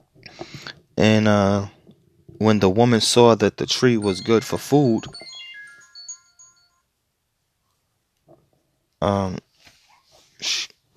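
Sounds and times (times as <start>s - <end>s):
speech: 1.0s - 1.8s, 2.4s - 5.2s, 9.0s - 9.5s
phone ringtone bright melodic chime: 4.0s - 6.9s.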